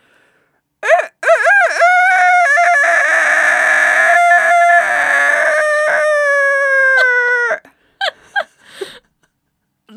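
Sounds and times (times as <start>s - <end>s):
person imitating a rooster crowing: 0.8s - 7.7s
person's short breathy gasps: 7.6s - 9.1s.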